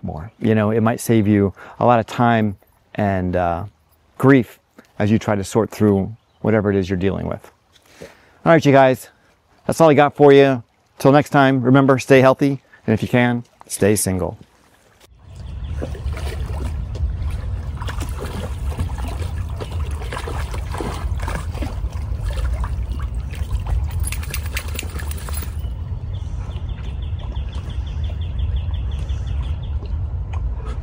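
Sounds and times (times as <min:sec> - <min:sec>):
speech: 0:00.3 - 0:14.5
water trickling and splashing as dogs drink on a warm day: 0:07.6 - 0:30.5
constant low rumble: 0:15.1 - 0:30.8.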